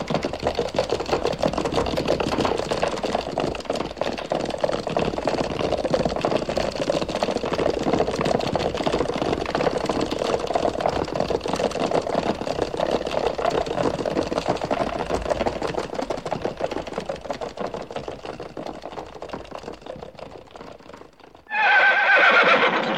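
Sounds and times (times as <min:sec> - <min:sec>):
horse hoofbeats in a fast steady clip-clop: 0:00.0 - 0:22.9
loud shrill horse whinny: 0:21.5 - 0:22.9.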